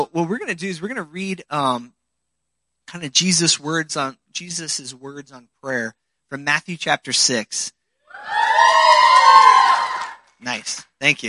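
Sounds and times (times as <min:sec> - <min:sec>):
speech: 0:00.0 - 0:02.0, 0:02.9 - 0:08.8, 0:10.4 - 0:11.2
large group of people cheering and whooping: 0:08.1 - 0:10.3.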